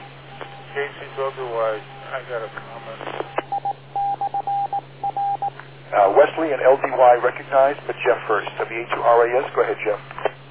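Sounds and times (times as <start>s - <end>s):
radio net beeps on an amateur radio channel: 0.0s - 5.6s
constant low hum: 0.0s - 10.4s
speech: 0.8s - 3.4s, 5.9s - 10.1s.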